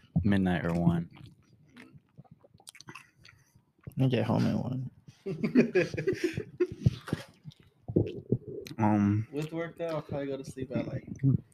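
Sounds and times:
speech: 0.2 - 1.3, 4.0 - 7.2, 8.8 - 11.4
wet chewing and munching of food: 0.6 - 4.0, 6.6 - 8.8
laughter: 5.3 - 7.3.

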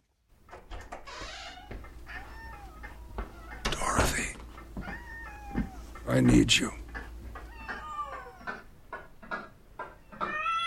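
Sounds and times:
cat meowing: 1.4 - 6.0, 7.4 - 8.7, 10.1 - 10.6
low steady hum: 1.4 - 10.1
speech: 6.1 - 6.8.

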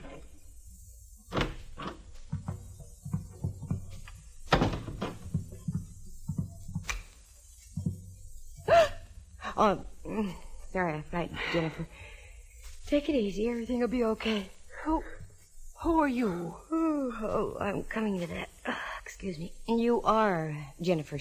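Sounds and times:
dull thunks from the door: 1.3 - 6.9
speech: 9.6 - 12.1, 12.9 - 15.2, 15.8 - 18.6, 19.2 - 21.1.

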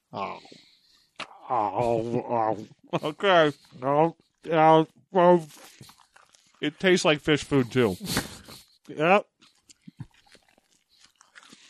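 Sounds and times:
speech: 0.1 - 0.7, 1.5 - 6.0, 6.6 - 9.3
chewing on a rubbery condom in the mouth: 5.4 - 11.6.

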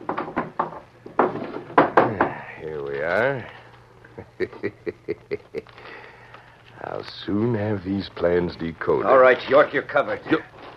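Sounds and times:
wooden knocks and rattles: 0.0 - 2.4
speech: 3.1 - 3.6, 4.2 - 6.0, 6.8 - 10.5
laughter: 4.2 - 6.0.

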